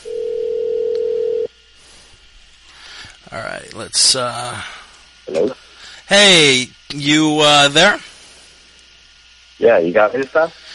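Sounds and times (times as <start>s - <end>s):
electronic ringback tone from an outgoing phone call: 0.0s - 1.5s
speech: 3.3s - 8.1s, 9.6s - 10.6s.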